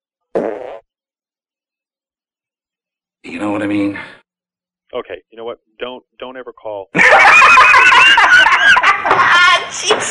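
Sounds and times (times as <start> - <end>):
loud buzzy fart: 0.3 - 0.9
speech: 3.3 - 4.2, 4.9 - 10.0
laughter: 7.0 - 10.0.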